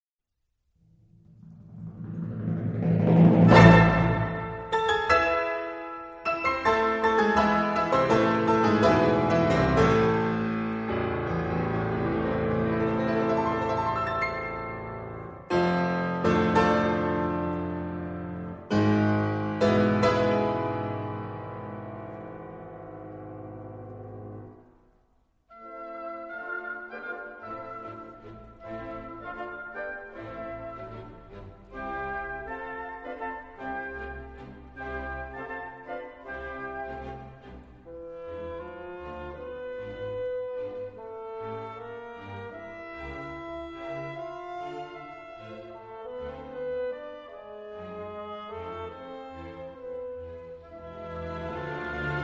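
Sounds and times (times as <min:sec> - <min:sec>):
classical piano concerto: 0:00.9 - 0:52.2.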